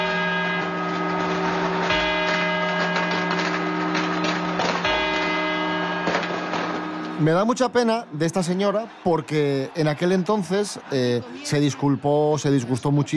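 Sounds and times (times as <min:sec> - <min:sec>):
clock tower bell striking midnight: 0:00.0 - 0:07.7
speech: 0:07.2 - 0:13.1.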